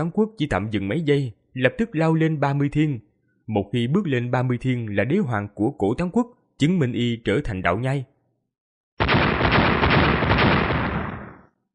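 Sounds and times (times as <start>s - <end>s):
speech: 0.0s - 8.1s
thunderous explosive impact: 9.0s - 11.5s.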